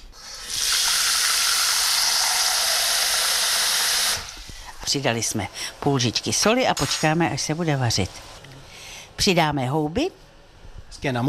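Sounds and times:
water pouring into a pot: 0:00.2 - 0:04.5
speech: 0:04.9 - 0:08.4, 0:09.2 - 0:10.3, 0:10.9 - 0:11.2.

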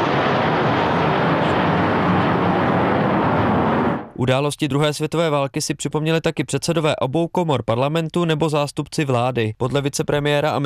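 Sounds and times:
military aircraft passing overhead with jet engine roar: 0:00.0 - 0:04.2
speech: 0:04.2 - 0:10.6.

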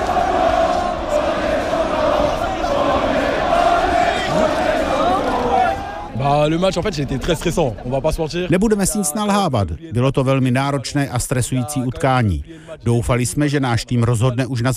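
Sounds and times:
large street crowd roaring and cheering: 0:00.0 - 0:06.6
street crowd shouting and chanting: 0:00.0 - 0:07.8
speech: 0:06.4 - 0:14.7.

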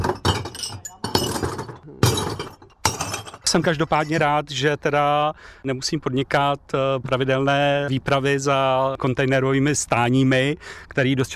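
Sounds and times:
glass bottles tumbling and shattering from a tipped basket: 0:00.0 - 0:03.6
speech: 0:03.5 - 0:11.3.

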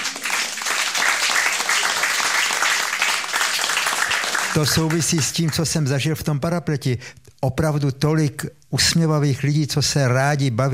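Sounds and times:
audience applauding: 0:00.0 - 0:05.6
speech: 0:04.6 - 0:10.7.

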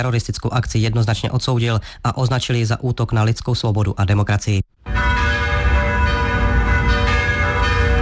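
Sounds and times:
speech: 0:00.0 - 0:04.6
many church bells ringing: 0:04.8 - 0:07.9.

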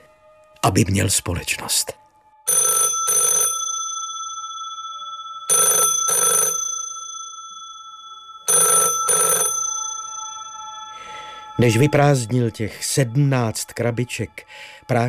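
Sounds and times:
speech: 0:00.6 - 0:02.0, 0:11.6 - 0:15.0
telephone ringing in classic double-burst pattern: 0:02.5 - 0:12.0.

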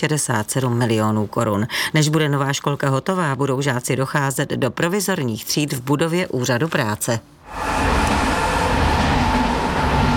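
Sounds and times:
speech: 0:00.0 - 0:07.7
train rolling past on a railway line in Český Brod, Czech Republic: 0:07.4 - 0:10.1.

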